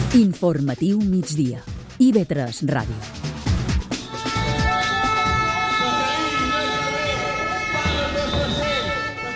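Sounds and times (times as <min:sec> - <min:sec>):
speech: 0:00.1 - 0:03.2
horns blaring at a teachers' street protest rally: 0:03.8 - 0:09.3
shrill whistles at a teachers' street protest rally: 0:04.0 - 0:09.2
crowd of about thirty teachers shouting in front of the Parliament: 0:04.3 - 0:09.3.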